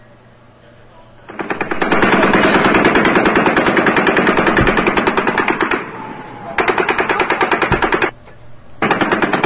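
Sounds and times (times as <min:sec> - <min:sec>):
automatic gunfire fired down into a parking lot from a hotel's 30th floor: 0:01.3 - 0:08.1, 0:08.8 - 0:09.4.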